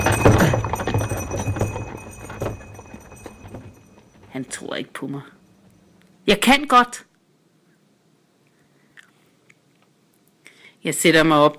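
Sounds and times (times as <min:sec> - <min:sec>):
hooves of a horse pulling a carriage clip-clopping: 0:00.0 - 0:04.8
speech: 0:04.4 - 0:05.4, 0:06.3 - 0:07.1, 0:10.8 - 0:11.5.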